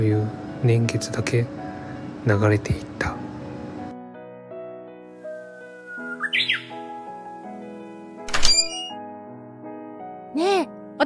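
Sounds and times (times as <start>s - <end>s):
speech: 0.0s - 1.6s, 2.2s - 3.2s
soft sustained music: 0.0s - 11.0s
Japanese bush warbler singing: 5.7s - 7.0s.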